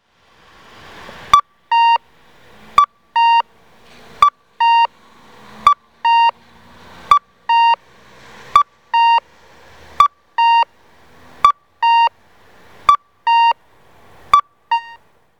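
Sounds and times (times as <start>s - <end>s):
cuckoo call traffic signal in Tottori: 1.3s - 2.1s, 2.7s - 3.5s, 4.1s - 6.4s, 7.1s - 7.8s, 8.6s - 9.3s, 10.0s - 10.7s, 11.4s - 12.2s, 12.8s - 13.6s, 14.3s - 15.1s.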